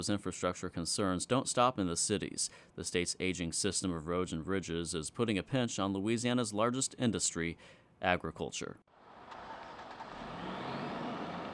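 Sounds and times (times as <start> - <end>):
speech: 0.0 - 8.9
trucks driving into a sugarcane cooperative on a wet foggy morning: 9.0 - 11.5.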